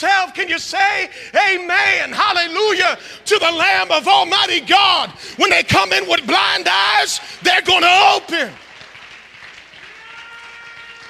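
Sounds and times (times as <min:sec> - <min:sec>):
speech: 0:00.0 - 0:08.6
audience clapping at a worship service: 0:07.0 - 0:11.0.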